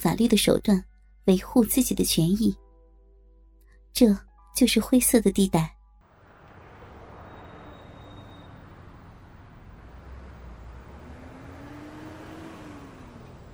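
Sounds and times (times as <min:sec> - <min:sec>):
speech: 0:00.1 - 0:02.6, 0:04.0 - 0:05.8
city bus engine rumble in China: 0:06.0 - 0:13.5
road roar inside a moving city bus: 0:06.0 - 0:13.5
mechanical whine of accelerating bus: 0:06.1 - 0:09.7.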